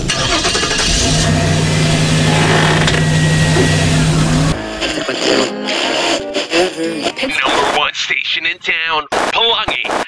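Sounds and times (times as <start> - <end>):
car engine turning over and running: 0.0 - 5.5
voices: 3.5 - 10.0.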